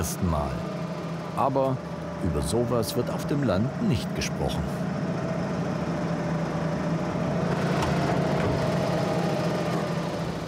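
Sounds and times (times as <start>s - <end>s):
speech: 0.0s - 0.7s, 1.4s - 4.9s
tractor engine running for a driving exercise in a training session: 0.0s - 10.4s.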